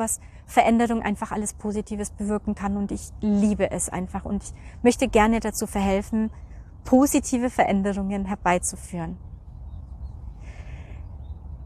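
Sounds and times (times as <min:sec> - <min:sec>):
speech: 0:00.0 - 0:09.3
steady low rumble of outdoor noise: 0:00.0 - 0:11.6
faint high bird chirps: 0:09.2 - 0:11.6.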